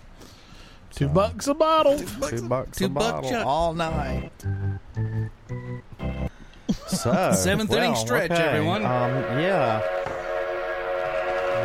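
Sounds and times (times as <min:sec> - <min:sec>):
speech: 0:01.0 - 0:05.1, 0:07.0 - 0:10.1
laughter: 0:06.7 - 0:09.0
train horn blaring: 0:07.9 - 0:11.6.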